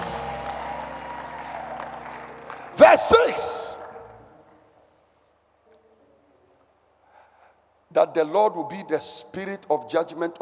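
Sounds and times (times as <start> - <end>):
audience clapping: 0.0 - 4.3
speech: 2.8 - 3.8, 8.0 - 10.3.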